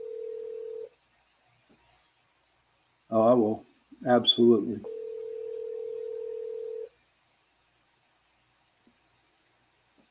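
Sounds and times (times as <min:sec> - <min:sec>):
telephone ringing tone heard by the caller: 0:00.0 - 0:00.9, 0:04.8 - 0:06.9
speech: 0:03.1 - 0:05.0.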